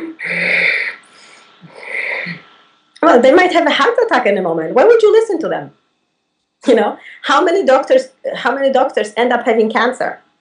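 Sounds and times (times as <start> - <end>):
voice imitating labored heavy breathing: 0.0 - 2.5
speech: 3.1 - 5.8, 6.6 - 10.2.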